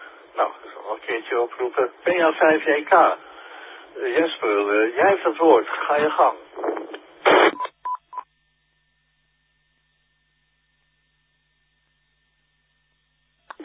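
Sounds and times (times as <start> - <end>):
faint steady hum: 0.0 - 13.6
harsh burst of static: 0.3 - 7.6
speech: 0.4 - 3.3, 3.9 - 6.7.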